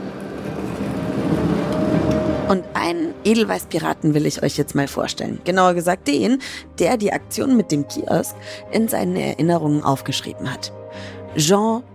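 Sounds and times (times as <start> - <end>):
tram rumbling as it pulls away: 0.0 - 4.6
speech: 2.5 - 11.9.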